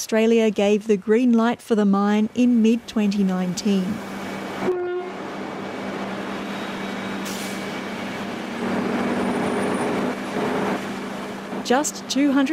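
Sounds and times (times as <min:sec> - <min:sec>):
speech: 0:00.0 - 0:04.8, 0:11.7 - 0:12.5
coal freight train wagons rumbling and clattering on tracks: 0:02.0 - 0:12.5
brief tonal squeal of freight train: 0:06.4 - 0:08.3.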